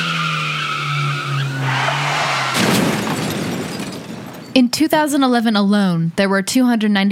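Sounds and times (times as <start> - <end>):
car tires screeching in a long skid: 0.0 - 4.1
car crash impact: 1.6 - 4.6
shattering debris clattering: 2.5 - 4.6
speech: 4.8 - 7.1.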